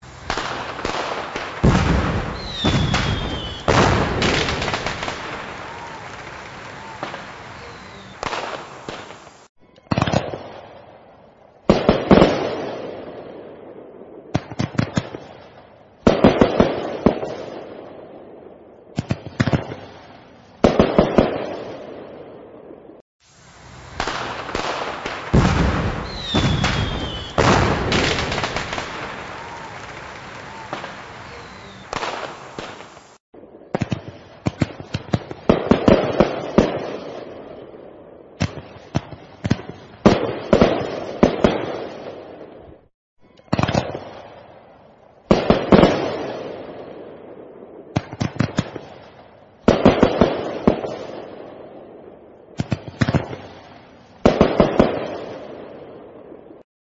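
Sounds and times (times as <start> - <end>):
fireworks exploding in the sky: 0.0 - 11.0, 11.6 - 42.8, 43.4 - 56.6.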